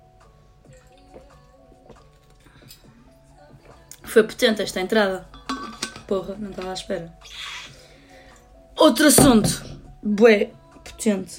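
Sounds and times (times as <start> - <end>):
person sipping water: 0.8 - 3.2
speech: 4.1 - 5.4, 6.1 - 7.4, 8.8 - 11.3.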